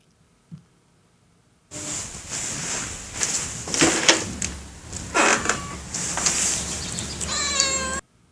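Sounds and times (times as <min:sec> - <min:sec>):
dense noisy background: 0:01.7 - 0:07.8
cat meowing loudly: 0:04.8 - 0:08.0.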